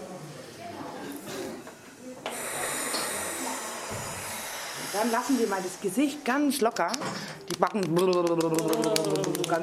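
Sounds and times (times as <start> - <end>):
deep airy inhale and breathy exhale: 2.3 - 5.7
speech: 5.0 - 9.6.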